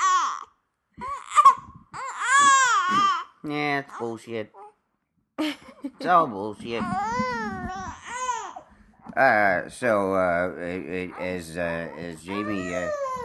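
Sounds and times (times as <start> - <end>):
baby fussing and crying: 0.0 - 4.8, 6.6 - 8.7, 10.8 - 13.2
speech: 3.5 - 4.6, 5.4 - 7.8, 9.2 - 13.0.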